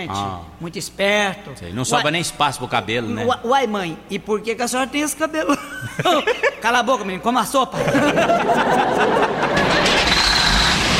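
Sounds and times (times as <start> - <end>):
speech: 0.0 - 9.2
laughter: 5.5 - 6.8, 7.8 - 10.1
truck engine cranking and starting: 9.5 - 10.9.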